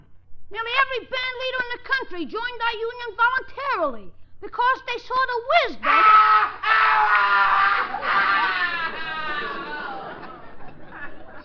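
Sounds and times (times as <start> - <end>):
quieter uneven noise: 0.0 - 11.4
speech: 0.5 - 9.0
loud high-pitched scream from a cellar: 5.8 - 9.6
laughter: 6.7 - 11.4.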